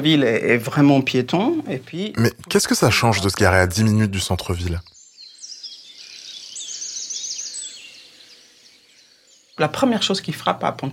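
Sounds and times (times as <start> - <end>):
speech: 0.0 - 5.0, 9.6 - 10.9
birds singing and chirping in high bright trills in a pedestrian town: 2.2 - 10.9.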